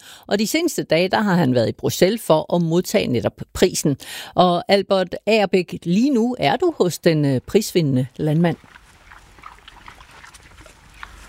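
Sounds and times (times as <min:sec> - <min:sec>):
speech: 0:00.2 - 0:08.8
pigs grunting and snuffling on the grass of an organic farm: 0:07.3 - 0:11.2
pigs squealing on an organic farm: 0:08.6 - 0:11.2.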